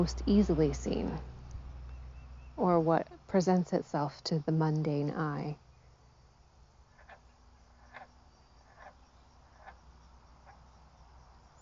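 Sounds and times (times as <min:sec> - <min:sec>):
speech: 0:00.0 - 0:01.3, 0:02.6 - 0:05.6
low hum: 0:00.0 - 0:11.6
frog croaking: 0:06.8 - 0:10.8.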